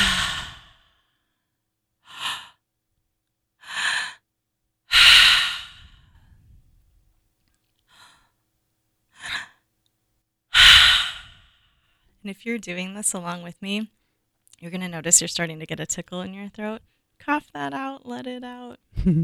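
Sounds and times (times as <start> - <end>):
deep breathing into the belly and chest with forceful exhales: 0.0 - 1.3, 2.0 - 2.6, 3.6 - 4.2, 4.9 - 6.8, 7.9 - 8.3, 10.6 - 12.0
speech: 12.2 - 14.0, 14.6 - 19.2.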